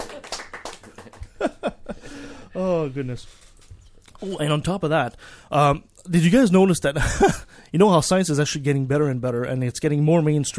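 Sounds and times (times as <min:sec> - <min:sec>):
a few people clapping by hand: 0:00.0 - 0:01.8
people laughing: 0:00.0 - 0:02.0
speech: 0:02.6 - 0:03.4, 0:04.2 - 0:10.5.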